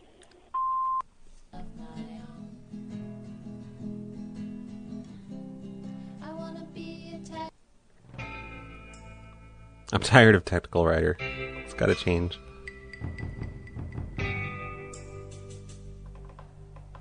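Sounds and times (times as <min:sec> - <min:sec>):
answering machine beep: 0:00.6 - 0:01.0
music: 0:01.6 - 0:07.5, 0:08.1 - 0:10.4, 0:11.0 - 0:17.0
speech: 0:09.9 - 0:13.2.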